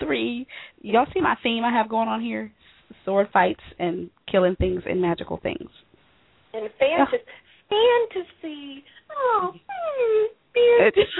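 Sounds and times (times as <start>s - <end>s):
speech: 0.1s - 5.9s, 6.5s - 11.1s
person whimpering: 9.0s - 10.4s.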